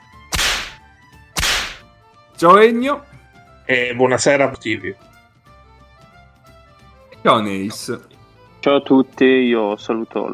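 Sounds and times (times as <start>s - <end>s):
whip cracks with hissing tail: 0.3s - 0.8s, 1.4s - 1.9s
speech: 2.4s - 5.1s, 7.2s - 10.3s.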